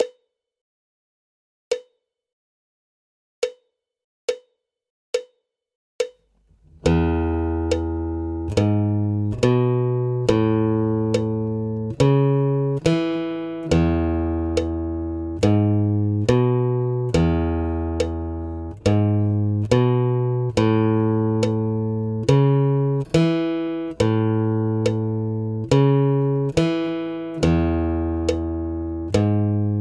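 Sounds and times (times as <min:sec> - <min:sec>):
easy slow guitar riffs: 0:06.6 - 0:29.7.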